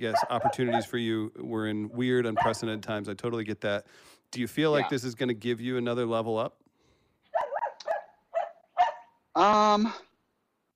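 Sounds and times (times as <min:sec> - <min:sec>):
dogs barking: 0:00.0 - 0:01.0, 0:02.3 - 0:02.8, 0:07.3 - 0:09.2
speech: 0:00.0 - 0:06.6, 0:09.4 - 0:10.1.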